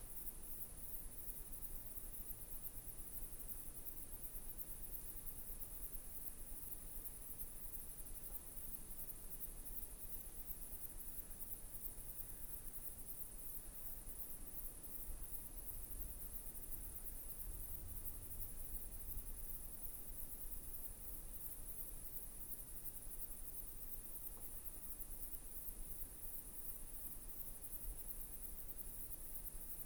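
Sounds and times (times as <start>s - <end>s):
night nature ambience: 0.0s - 29.8s.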